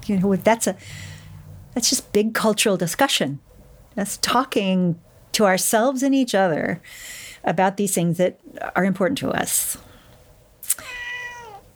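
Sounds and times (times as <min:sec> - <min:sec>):
speech: 0:00.1 - 0:01.2, 0:01.8 - 0:09.9
cat meowing: 0:10.6 - 0:11.7.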